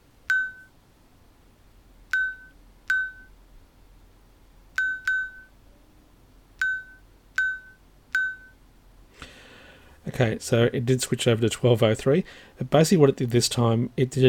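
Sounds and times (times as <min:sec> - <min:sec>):
watch buzzing the time as electronic beeps: 0:00.3 - 0:00.7, 0:02.1 - 0:03.3, 0:04.8 - 0:05.5, 0:06.6 - 0:08.6
speech: 0:10.2 - 0:14.2.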